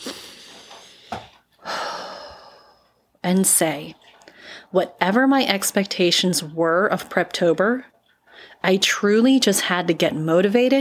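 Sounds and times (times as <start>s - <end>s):
deep breathing: 0.0s - 3.1s, 4.2s - 4.7s
speech: 3.2s - 10.7s.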